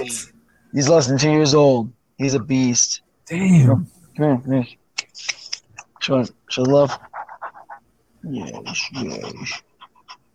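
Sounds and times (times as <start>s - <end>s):
speech: 0.1s - 5.4s, 6.0s - 7.1s, 8.2s - 9.7s
Bernedoodle puppy panting: 6.9s - 10.3s.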